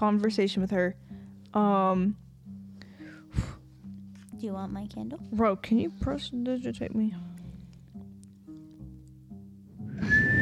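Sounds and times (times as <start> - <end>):
speech: 0.0 - 2.2, 4.4 - 7.3
person whistling a tune: 9.9 - 10.4.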